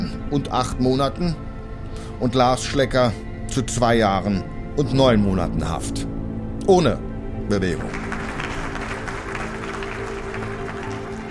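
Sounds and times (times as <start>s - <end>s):
speech: 0.3s - 1.4s, 2.2s - 8.1s
crowd applauding in a courtroom: 7.6s - 11.2s.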